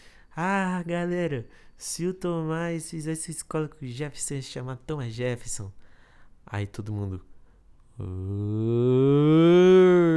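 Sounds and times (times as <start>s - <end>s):
speech: 0.4s - 5.8s, 6.5s - 7.3s, 8.0s - 10.1s
single voice imitating a crowd's jeering uuuh: 8.0s - 10.1s.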